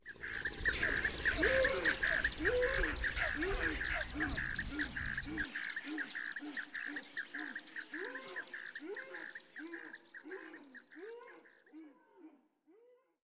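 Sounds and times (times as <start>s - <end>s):
morning ambience: 0.1s - 10.2s.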